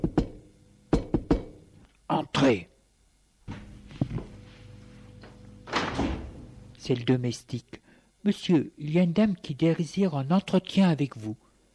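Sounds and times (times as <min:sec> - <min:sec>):
knocking on a wooden door: 0:00.0 - 0:01.6
speech: 0:02.1 - 0:02.7, 0:06.9 - 0:11.4.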